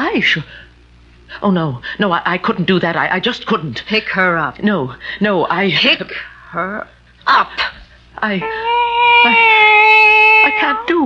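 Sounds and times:
speech: 0:00.2 - 0:00.6, 0:01.3 - 0:09.6, 0:10.5 - 0:11.0
cat meowing: 0:08.4 - 0:11.0.

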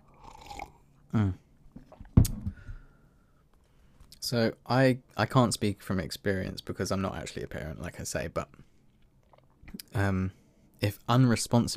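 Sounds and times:
person sipping tea with a soft slurp: 0:00.0 - 0:00.9
short throaty swallow: 0:00.1 - 0:00.8
speech: 0:01.1 - 0:01.4, 0:04.3 - 0:08.7, 0:09.7 - 0:11.7
faint breathing: 0:02.5 - 0:04.1.

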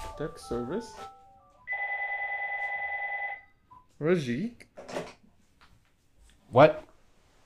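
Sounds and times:
speech: 0:00.2 - 0:01.2, 0:04.0 - 0:04.9, 0:06.5 - 0:06.9
telephone ringing with a warbling electronic tone: 0:01.6 - 0:03.5.

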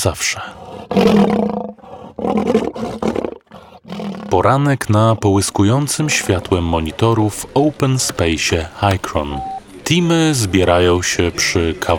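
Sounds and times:
speech: 0:00.0 - 0:03.0, 0:04.4 - 0:11.9
big cat roaring: 0:00.6 - 0:06.7.

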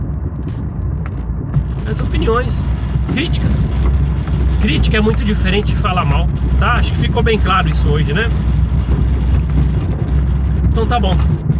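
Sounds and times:
car engine and tire drone: 0:00.0 - 0:11.5
road noise inside a car moving in traffic: 0:00.0 - 0:11.5
speech: 0:01.9 - 0:09.0, 0:10.8 - 0:11.4.

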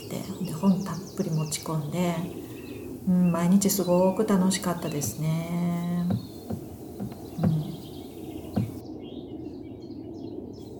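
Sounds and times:
quiet hiss: 0:00.0 - 0:08.8
speech: 0:01.7 - 0:06.2
short bird calls at a campsite in the morning: 0:06.0 - 0:08.8.

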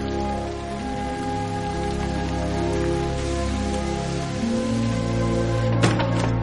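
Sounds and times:
steady rain spattering on a surface: 0:00.0 - 0:06.4.

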